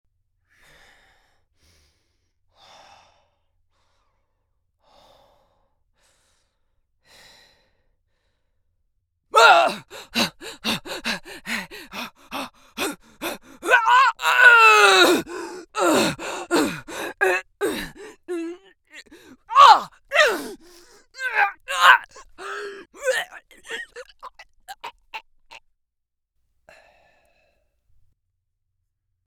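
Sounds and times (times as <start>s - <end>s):
human barbarian victim screaming with extreme vocals: 9.4s - 25.2s.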